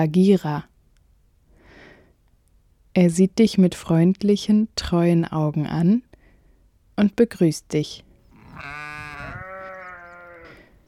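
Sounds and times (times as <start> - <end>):
speech: 0.0 - 0.7, 3.0 - 6.1, 7.0 - 8.9
sheep bleating: 8.3 - 10.7.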